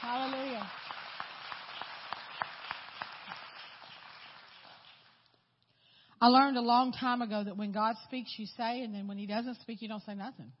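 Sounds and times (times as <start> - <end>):
crowd clapping: 0.0 - 5.4
speech: 6.2 - 10.5.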